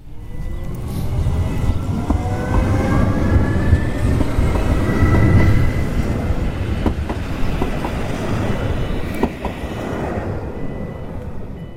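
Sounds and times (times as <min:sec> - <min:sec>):
train rolling into a railway station: 0:00.0 - 0:11.7
train wheel squeals: 0:00.2 - 0:06.5, 0:07.6 - 0:11.7.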